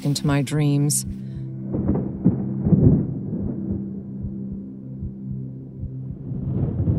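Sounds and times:
speech: 0:00.0 - 0:01.2
low rumbling thunder from a storm: 0:01.6 - 0:05.2, 0:05.8 - 0:06.9.

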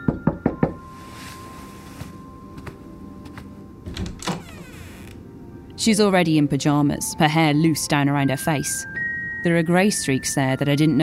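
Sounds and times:
quick firm knocks on a bedroom door: 0:00.0 - 0:00.8
soft shuffles: 0:00.9 - 0:03.5
speech: 0:05.8 - 0:11.0.

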